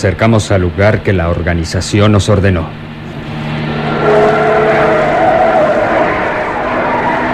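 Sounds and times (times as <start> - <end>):
speech: 0.0 - 2.9
car engine droning while driving and turning onto a road: 2.8 - 7.3
tires squealing and skidding on the road surface: 3.1 - 7.3.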